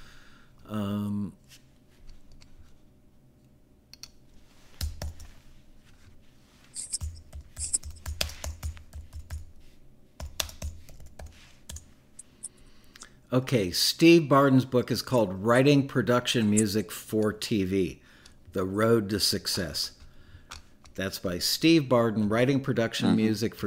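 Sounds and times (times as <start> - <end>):
computer keyboard typing during an online search: 6.8 - 9.5, 10.2 - 12.3
speech: 13.3 - 18.0, 18.6 - 20.0, 21.0 - 23.6.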